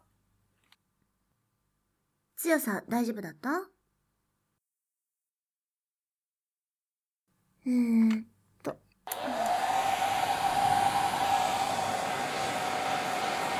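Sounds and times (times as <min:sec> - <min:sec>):
speech: 0:02.4 - 0:03.8, 0:07.6 - 0:09.4
hair dryer switch click: 0:09.1 - 0:11.5
hair dryer blowing warm air to dry hair: 0:09.1 - 0:13.5.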